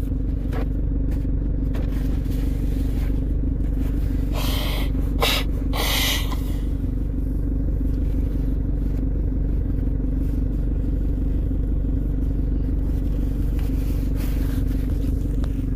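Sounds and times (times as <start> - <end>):
steady low rumble: 0.0 - 15.7
faint sniffs: 4.2 - 6.6
person blowing nose: 4.3 - 6.6.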